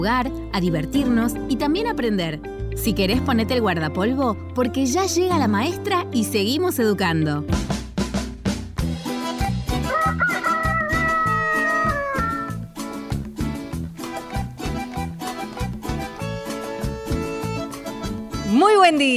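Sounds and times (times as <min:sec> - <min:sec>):
speech: 0:00.0 - 0:07.7, 0:18.9 - 0:19.1
loud upbeat music with punchy drum hits: 0:06.7 - 0:19.1
rooster crowing: 0:09.8 - 0:12.6.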